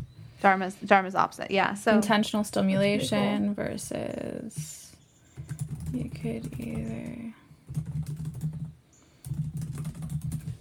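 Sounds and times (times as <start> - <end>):
speech: 0.4 - 4.8, 5.9 - 7.4
computer keyboard typing: 5.3 - 10.6.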